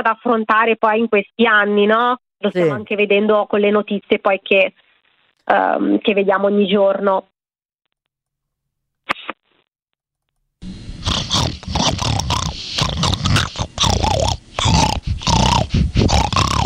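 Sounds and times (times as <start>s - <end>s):
speech: 0.0s - 4.8s, 5.5s - 7.3s
pig grunting and snorting in a studio: 11.0s - 16.6s.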